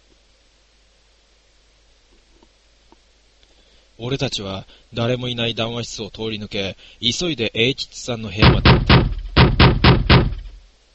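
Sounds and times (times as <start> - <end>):
speech: 4.0 - 8.9
hard knocking on a room door: 8.4 - 10.6.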